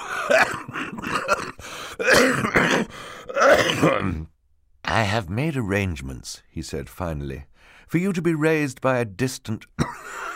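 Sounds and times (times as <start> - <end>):
person performing a wet phlegmy coughing fit: 0.0 - 4.3, 9.8 - 10.3
throat-clearing: 0.2 - 4.4
speech: 0.3 - 0.7, 5.1 - 10.2
short breaths: 1.6 - 2.0, 2.9 - 3.3, 7.5 - 7.9.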